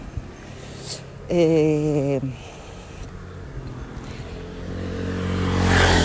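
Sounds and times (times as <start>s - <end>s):
motorcycle engine passing: 0.0s - 6.0s
speech: 0.9s - 2.5s.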